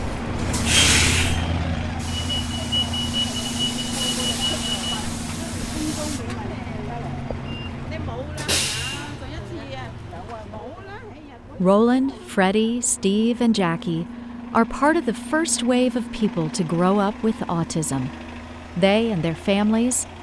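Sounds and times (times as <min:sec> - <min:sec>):
large vehicle idling and rumbling: 0:00.0 - 0:20.2
air brakes hissing: 0:00.5 - 0:06.2, 0:08.4 - 0:09.2
speech: 0:11.6 - 0:18.2, 0:18.8 - 0:20.2.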